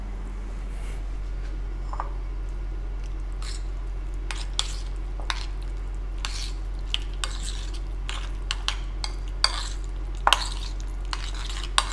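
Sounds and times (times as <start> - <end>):
steady low hum: 0.0 - 6.8
spoon stirring a mixture of cumin and sesame seeds: 3.4 - 3.7, 4.3 - 5.6, 6.2 - 11.9.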